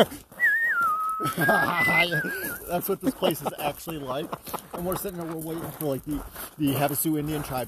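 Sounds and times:
speech: 0.0 - 0.2, 1.2 - 7.6
person whistling a Western movie theme tune: 0.3 - 2.7
laughter: 1.1 - 5.2.

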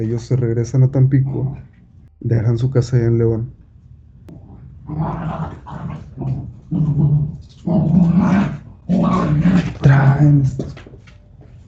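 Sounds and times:
speech: 0.0 - 3.6, 4.9 - 10.8
dog growling and barking: 4.3 - 10.4.

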